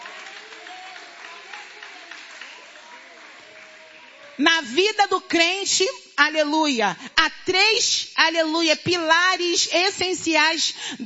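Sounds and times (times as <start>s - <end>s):
congregation clapping hands: 0.0s - 4.7s
speech: 4.4s - 11.0s.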